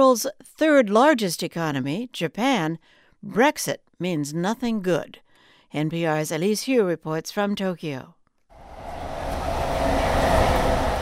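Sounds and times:
speech: 0:00.0 - 0:08.2
train rumbling across an overpass in Tokyo Japan: 0:08.6 - 0:11.0.

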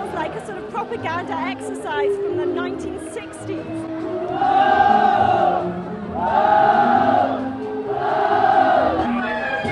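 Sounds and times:
speech: 0:00.3 - 0:06.7
large crowd cheering: 0:04.2 - 0:09.7.

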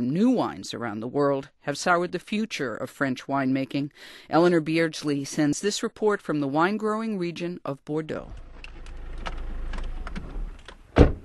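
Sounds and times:
speech: 0:00.1 - 0:08.4
faint clicks and creaks of a stopping car: 0:08.3 - 0:10.9
car engine rumble on a tiny road amid vineyards: 0:08.3 - 0:11.2
loud thump as a car stops: 0:10.2 - 0:11.2.

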